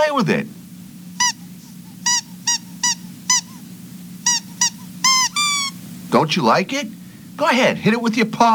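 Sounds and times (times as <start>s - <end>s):
steady low hum: 0.0s - 8.5s
speech: 0.1s - 0.6s, 6.2s - 8.5s
squeaky toy mouse for a cat squeaking: 1.2s - 1.4s, 2.0s - 3.6s, 4.2s - 5.8s.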